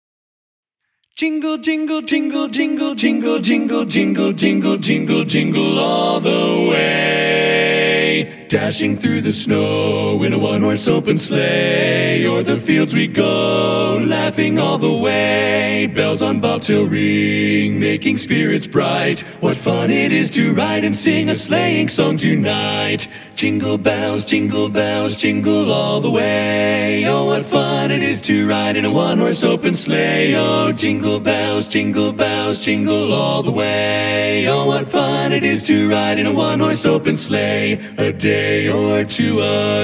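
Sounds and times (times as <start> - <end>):
Christmas song with all parts: 1.2 - 39.8.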